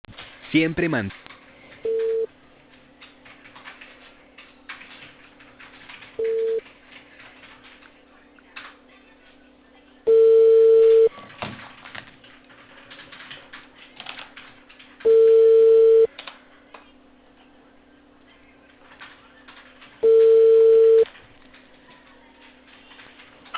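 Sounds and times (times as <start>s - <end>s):
speech: 0.5s - 1.3s
telephone busy tone after a dropped call: 1.8s - 2.3s, 6.2s - 6.6s, 10.1s - 11.1s, 15.0s - 16.1s, 20.0s - 21.1s.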